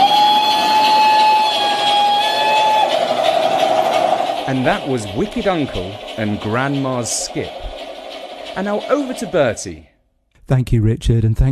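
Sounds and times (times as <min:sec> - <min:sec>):
vintage steam train whistle: 0:00.0 - 0:05.5
steam train running with rushing hissing rumble: 0:00.0 - 0:10.0
speech: 0:04.5 - 0:07.8, 0:08.6 - 0:09.9, 0:10.5 - 0:11.5.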